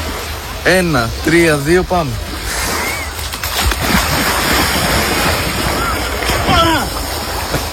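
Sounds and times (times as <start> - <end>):
sea waves rushing: 0.0 - 7.7
wind: 0.0 - 7.7
speech: 0.6 - 2.3
splash of someone diving into the sea: 2.6 - 7.7.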